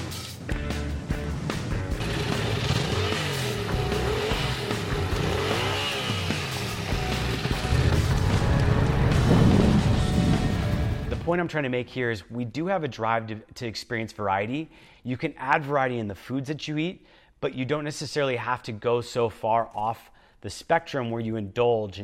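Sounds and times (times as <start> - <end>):
motorcycle engine revving: 1.0 - 11.2
speech: 11.3 - 22.0.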